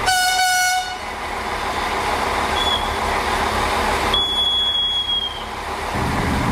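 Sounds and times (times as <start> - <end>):
train horn blast: 0.0 - 1.1
train rumbling along a mountain railway track: 0.0 - 6.5
high metallic wheel squeals as train rounds curves: 4.1 - 5.5.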